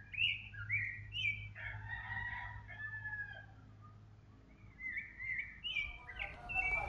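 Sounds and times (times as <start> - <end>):
bird song on a volcano: 0.0 - 1.8, 3.3 - 6.8
low rumble of wind: 4.8 - 6.8.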